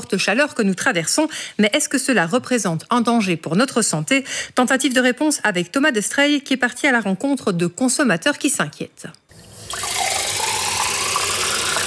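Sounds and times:
speech: 0:00.1 - 0:10.0
water gushing from a kitchen tap: 0:09.3 - 0:11.8.

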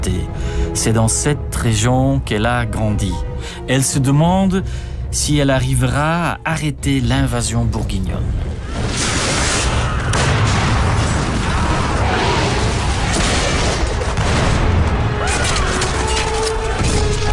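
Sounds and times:
speech: 0:00.0 - 0:08.5
crackling volleys during a siege: 0:08.7 - 0:17.2
booming cannon blasts during a siege: 0:08.8 - 0:15.4.

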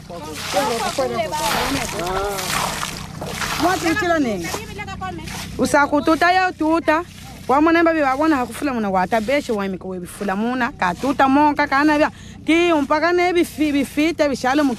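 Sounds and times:
people talking: 0:00.0 - 0:02.7, 0:03.5 - 0:14.7
water poured and sloshing in a basin to wash ore: 0:00.0 - 0:14.7.

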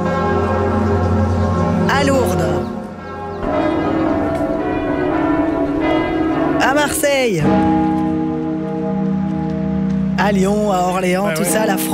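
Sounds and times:
church bells ringing: 0:00.0 - 0:11.9
speech: 0:07.2 - 0:07.7, 0:10.3 - 0:11.9.

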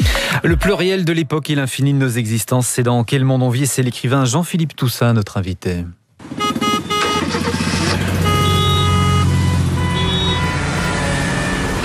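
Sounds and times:
speech: 0:00.4 - 0:06.5
dense city car traffic engine rumble in Brussels: 0:06.2 - 0:11.8.

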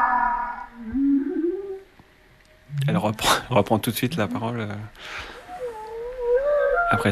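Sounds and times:
whale harmonic tonal moan recorded by hydrophone: 0:00.0 - 0:01.9, 0:04.0 - 0:07.1
whale low rising drawn-out whoop recorded by hydrophone: 0:00.0 - 0:01.9, 0:05.4 - 0:07.1
speech: 0:02.9 - 0:05.4, 0:06.9 - 0:07.1.

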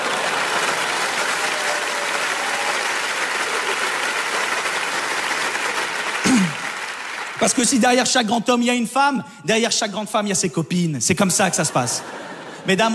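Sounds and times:
audience applause: 0:00.0 - 0:08.2
speech: 0:07.4 - 0:12.9
laughter: 0:11.5 - 0:12.9.

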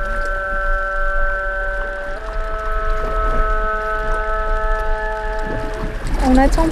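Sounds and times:
long tonal whale call with layered harmonics: 0:00.0 - 0:06.7
low rumbling underwater background: 0:00.0 - 0:06.7.

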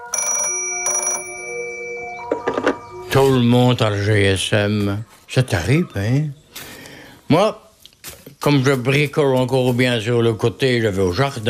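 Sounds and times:
old-fashioned rotary telephone bell ringing: 0:00.0 - 0:03.0
speech: 0:03.1 - 0:06.7, 0:07.3 - 0:07.6, 0:08.4 - 0:11.4.

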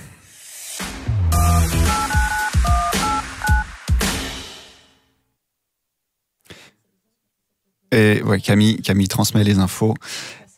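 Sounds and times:
phone keypad tones dialing a telephone number: 0:01.4 - 0:03.6
speech: 0:08.0 - 0:10.4.

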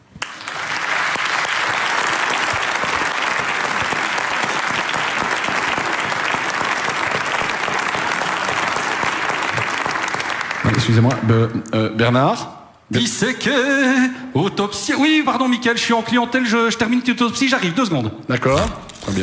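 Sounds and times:
loud sustained applause from a sizable audience: 0:00.0 - 0:11.4
speech: 0:10.9 - 0:19.2.

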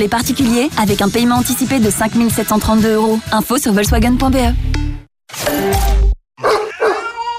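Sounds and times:
speech: 0:00.0 - 0:06.0
dog barking and growling: 0:06.4 - 0:07.2.

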